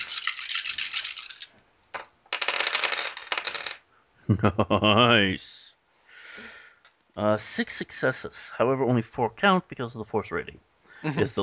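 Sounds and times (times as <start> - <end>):
six dice rattling and tumbling across a hard surface: 0.0 - 3.8
speech: 4.3 - 5.6, 7.2 - 11.4.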